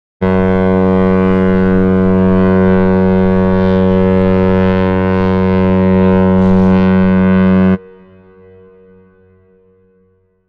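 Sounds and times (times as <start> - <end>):
big ship horn: 0.2 - 10.4.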